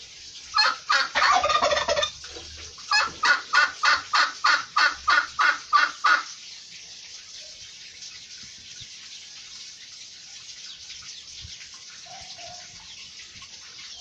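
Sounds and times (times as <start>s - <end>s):
turkey yelping: 0.6s - 2.2s, 2.9s - 6.3s
turkey gobbling: 0.6s - 6.3s.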